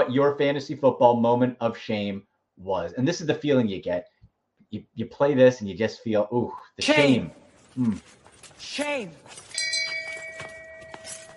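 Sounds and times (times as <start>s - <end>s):
speech: 0.0s - 4.1s, 4.7s - 9.4s
faint clatter: 6.8s - 11.3s
bell ringing: 9.2s - 11.3s.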